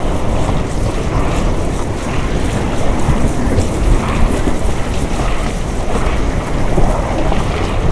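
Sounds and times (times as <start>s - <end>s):
water pipe: 0.0s - 7.9s.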